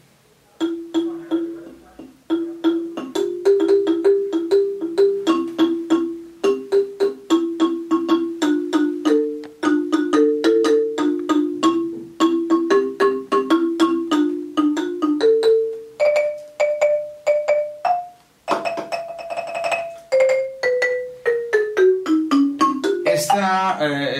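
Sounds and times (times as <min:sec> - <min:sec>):
carillon or marimba struck with rubber-tipped mallets: 0:00.6 - 0:23.8.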